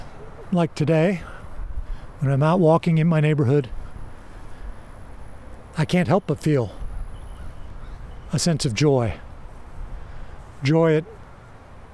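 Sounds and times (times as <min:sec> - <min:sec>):
speech: 0:00.5 - 0:01.3, 0:02.2 - 0:03.8, 0:05.8 - 0:06.8, 0:08.3 - 0:09.2, 0:10.6 - 0:11.2
crow cawing outdoors: 0:07.2 - 0:08.2.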